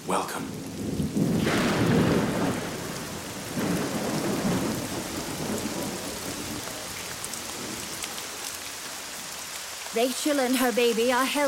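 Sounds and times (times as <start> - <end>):
steady heavy rain: 0.0 - 11.4
low rumbling thunder: 0.3 - 8.9
speech: 10.0 - 11.4.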